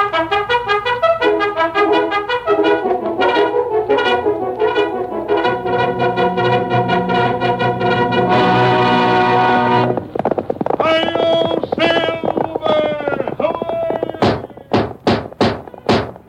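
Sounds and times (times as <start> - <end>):
brassy orchestral music: 0.0 - 10.1
galloping horse hoofbeats: 0.0 - 16.2.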